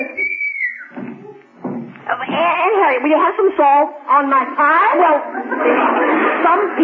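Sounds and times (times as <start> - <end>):
high steady whistle from the cellar: 0.0 - 1.0
murky low mid-range sounds: 0.9 - 2.8
speech: 2.9 - 6.8
laughter: 5.1 - 6.8.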